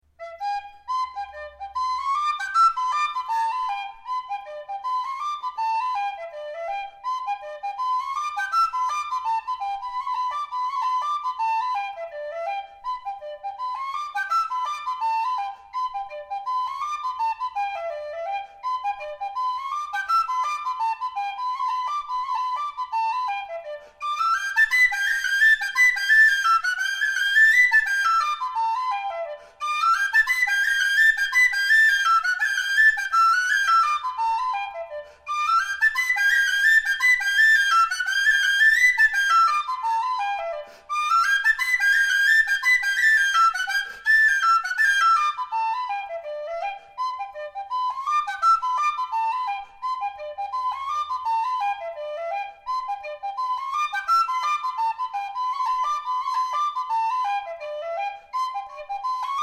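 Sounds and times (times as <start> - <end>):
whistle melody: 0.2 - 59.4.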